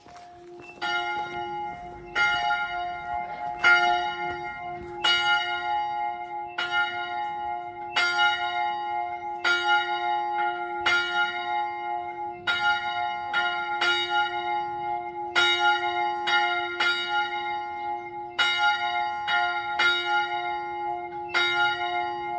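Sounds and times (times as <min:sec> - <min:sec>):
church bell ringing before a blessing at a church: 0:00.0 - 0:22.3.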